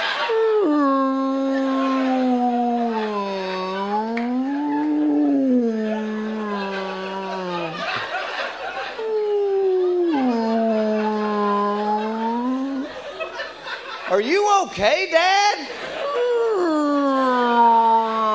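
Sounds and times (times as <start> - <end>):
laughter: 0.0 - 14.6, 15.6 - 17.5
man in a bathroom imitating humpback whale song: 0.3 - 8.0, 9.0 - 12.9, 16.2 - 18.3
speech: 14.2 - 15.8.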